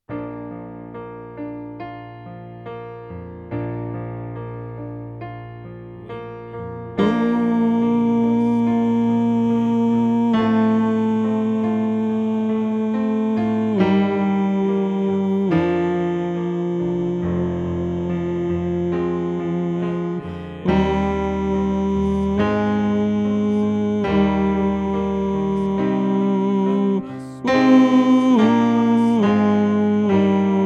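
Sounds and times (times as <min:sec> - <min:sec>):
tenor voice singing: 0:06.9 - 0:30.6.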